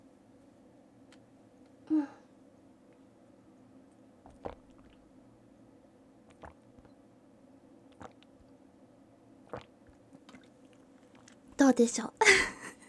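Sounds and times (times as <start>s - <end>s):
person gulping water while drinking: 4.2s - 5.4s, 6.2s - 7.1s, 7.8s - 8.6s, 9.3s - 12.7s
speech: 11.6s - 12.1s.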